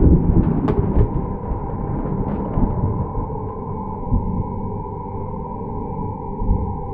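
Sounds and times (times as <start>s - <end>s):
rolling thunder: 0.0s - 5.0s.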